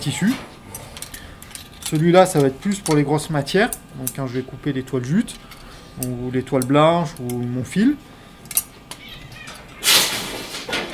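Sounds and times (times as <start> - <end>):
speech: 0.0 - 0.5, 1.9 - 8.1
cat meowing in a textile workshop: 8.9 - 10.0.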